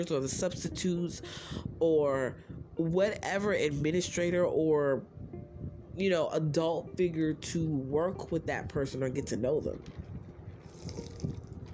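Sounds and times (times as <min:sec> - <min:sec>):
speech: 0:00.0 - 0:05.2, 0:06.0 - 0:10.1
person drinking water: 0:10.6 - 0:11.6.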